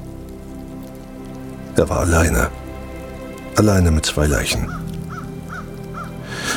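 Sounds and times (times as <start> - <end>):
speech: 1.8 - 2.6, 3.6 - 4.9
crow cawing: 4.7 - 6.5.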